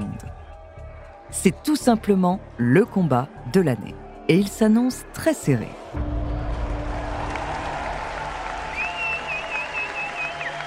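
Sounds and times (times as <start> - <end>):
large crowd cheering and applauding: 0.0 - 1.8, 3.1 - 10.6
speech: 1.4 - 6.0
high whistle: 8.7 - 10.6.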